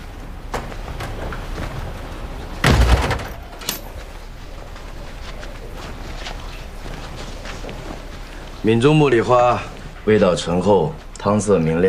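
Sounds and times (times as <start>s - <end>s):
soft scattered footsteps shuffling: 0.0s - 2.6s, 3.3s - 11.8s
light movements: 0.0s - 11.8s
door swinging shut with a loud heavy thud: 2.6s - 3.9s
speech: 8.7s - 11.8s.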